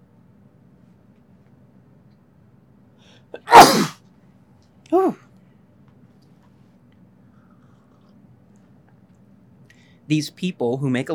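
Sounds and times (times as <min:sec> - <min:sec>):
speech: 0:03.2 - 0:03.9, 0:04.9 - 0:05.2, 0:10.1 - 0:11.1
loud sneeze: 0:03.4 - 0:04.0, 0:04.9 - 0:05.2.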